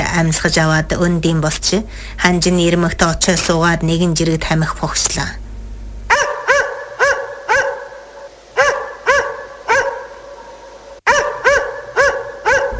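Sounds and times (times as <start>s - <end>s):
speech: 0.2s - 5.4s
dog barking: 6.1s - 12.7s.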